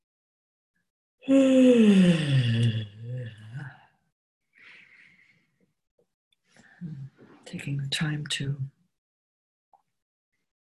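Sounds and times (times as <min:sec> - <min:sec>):
speech: 0:01.2 - 0:02.8, 0:07.6 - 0:08.8
person yawning: 0:01.2 - 0:03.7.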